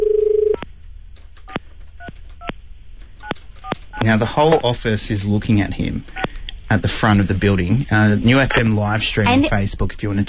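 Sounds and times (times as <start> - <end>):
telephone dial tone: 0.0 - 0.6
low hum: 0.0 - 10.2
speech: 4.0 - 10.2.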